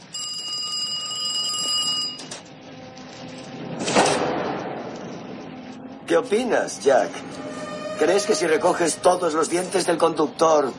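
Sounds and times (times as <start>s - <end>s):
telephone ringing with a high-pitched electronic tone: 0.0s - 2.4s
bus explosion: 3.6s - 5.4s
speech: 6.1s - 10.7s.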